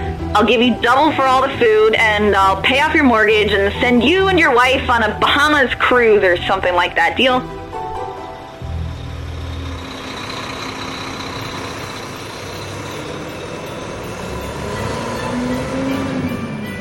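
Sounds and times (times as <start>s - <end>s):
heavy truck engine droning while driving up: 0.0s - 16.7s
speech: 0.4s - 7.6s.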